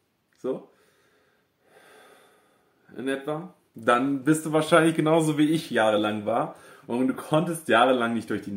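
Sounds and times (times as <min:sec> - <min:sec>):
speech: 0:00.4 - 0:00.8, 0:02.9 - 0:08.5
person breathing audibly through an open mouth: 0:00.7 - 0:02.8.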